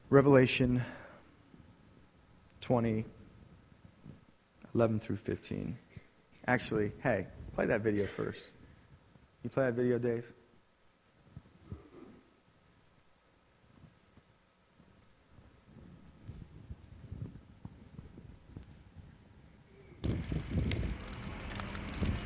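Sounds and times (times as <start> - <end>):
speech: 0.1 - 1.0, 2.6 - 3.2, 4.7 - 5.8, 6.4 - 8.6, 9.4 - 10.4
wind buffeting the microphone: 15.4 - 22.2
large bonfire burning debris roaring outdoors: 20.0 - 22.2
large bonfire popping and crackling: 20.0 - 22.2.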